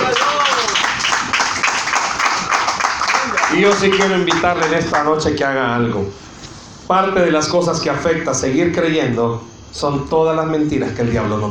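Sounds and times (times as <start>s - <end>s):
shouting voices: 0.0s - 0.9s
rising whoops: 0.0s - 1.0s
crowd clapping and cheering: 0.0s - 5.1s
speech: 3.6s - 6.2s, 6.9s - 11.4s.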